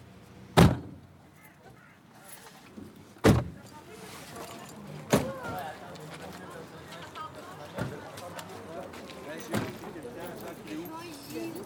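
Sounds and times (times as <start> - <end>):
car door slams: 0.6 - 1.0, 3.2 - 3.6, 5.1 - 5.4
bustle: 1.3 - 11.6
faint shuffling of people changing cars: 1.8 - 11.6.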